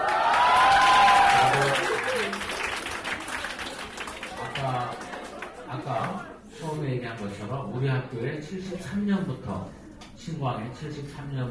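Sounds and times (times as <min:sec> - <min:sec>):
crowd of young voices cheering and shrieking in a school auditorium: 0:00.0 - 0:02.4
applause: 0:00.0 - 0:06.2
speech: 0:07.8 - 0:11.4.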